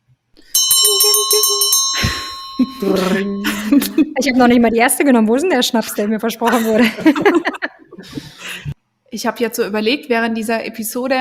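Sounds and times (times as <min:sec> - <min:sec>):
bright bell ringing to announce the last round: 0:00.5 - 0:04.8
laughter: 0:00.9 - 0:04.5, 0:05.5 - 0:08.8
speech: 0:02.6 - 0:08.2, 0:09.2 - 0:11.2.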